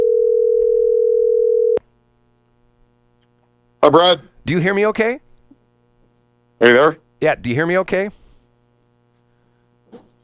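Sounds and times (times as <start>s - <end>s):
telephone dial tone while calling someone back: 0.0s - 1.8s
speech: 3.9s - 5.3s, 6.6s - 8.2s.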